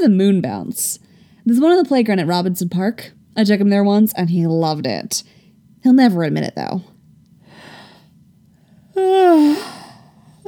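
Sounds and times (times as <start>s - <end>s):
speech: 0.0s - 6.9s, 9.0s - 9.8s
person yawning with a long voiced yawn: 8.9s - 10.1s.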